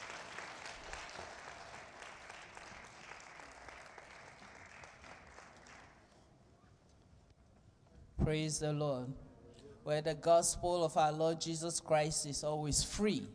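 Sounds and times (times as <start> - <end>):
large crowd applause: 0.0 - 6.1
speech: 8.3 - 13.3.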